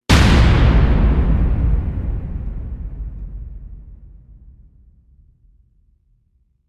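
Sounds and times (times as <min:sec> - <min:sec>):
epic bridge hit: 0:00.1 - 0:05.0.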